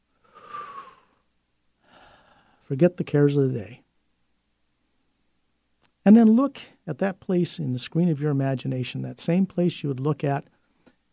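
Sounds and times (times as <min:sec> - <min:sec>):
person taking slow deep breaths: 0:00.1 - 0:01.2, 0:01.8 - 0:02.6
speech: 0:02.7 - 0:03.8, 0:06.0 - 0:10.5.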